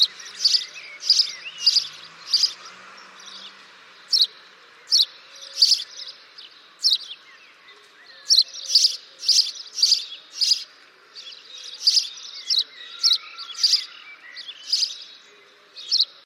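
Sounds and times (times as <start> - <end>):
Passer domesticus house sparrow chirping: 0.0 - 16.2.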